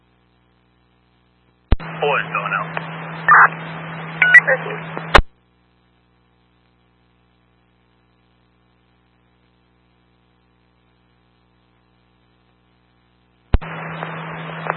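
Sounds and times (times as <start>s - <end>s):
low steady hum: 0.0s - 14.7s
speech: 2.0s - 5.2s
electronic phone keypad beeps: 4.2s - 4.6s.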